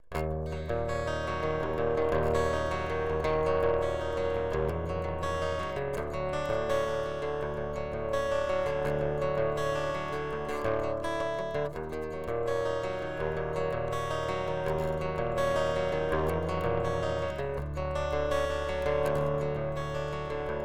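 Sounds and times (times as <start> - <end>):
picked acoustic guitar: 0.0 - 20.6.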